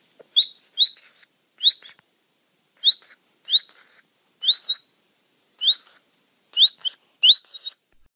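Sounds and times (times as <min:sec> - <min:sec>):
baby capybara chirping: 0:00.3 - 0:02.0, 0:02.8 - 0:04.9, 0:05.6 - 0:06.0, 0:06.6 - 0:07.8.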